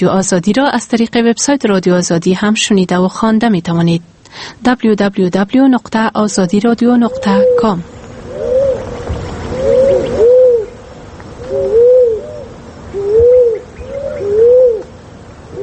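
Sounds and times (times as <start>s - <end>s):
speech: 0.0s - 8.0s
brownish-pink turtle dove cooing in low soft phrases: 6.2s - 15.6s.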